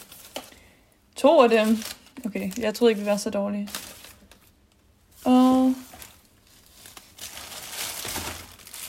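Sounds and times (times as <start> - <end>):
plastic bag crinkling while sorting trash from a bin: 0.0 - 8.8
speech: 1.2 - 3.8.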